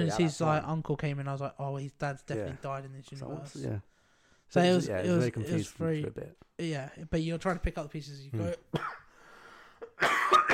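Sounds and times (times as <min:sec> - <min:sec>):
speech: 0:00.0 - 0:09.0
harsh hacking cough: 0:08.7 - 0:09.1, 0:09.8 - 0:10.5.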